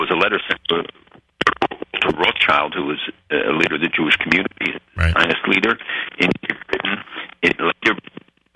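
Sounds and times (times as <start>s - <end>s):
speech: 0.1s - 1.0s, 2.5s - 8.1s
voice over a poor telephone connection breaking up: 5.0s - 5.2s.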